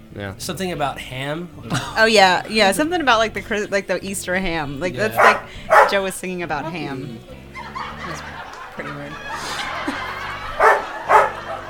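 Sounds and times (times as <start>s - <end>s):
speech: 0.2s - 7.4s
laughter: 1.6s - 2.4s, 5.0s - 11.6s
dog barking excitedly: 5.1s - 6.1s, 10.4s - 11.6s.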